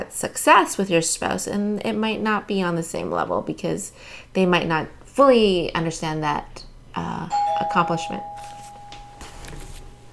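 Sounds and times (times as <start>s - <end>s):
speech: 0.1s - 8.5s
home doorbell ringing with steady electronic tone: 7.3s - 10.1s
faint rustling and shuffling: 8.2s - 10.1s.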